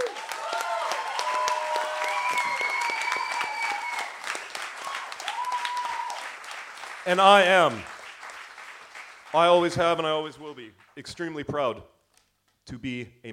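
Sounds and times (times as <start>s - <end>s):
whoops and cheers from a comedy show audience: 0.0s - 6.4s
audience applause at a comedy show: 0.0s - 10.5s
speech: 7.1s - 7.9s, 9.3s - 11.9s, 12.7s - 13.3s.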